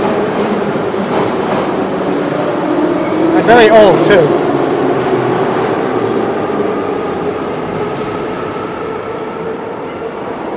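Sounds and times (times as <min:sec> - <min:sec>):
subway train wheels and motor rumbling: 0:00.0 - 0:10.5
speech: 0:03.5 - 0:04.5.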